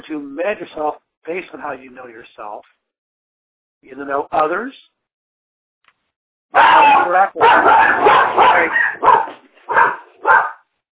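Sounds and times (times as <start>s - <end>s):
speech: 0.1s - 2.8s, 3.8s - 4.9s, 6.5s - 9.9s
dog yelping barks: 6.5s - 10.6s.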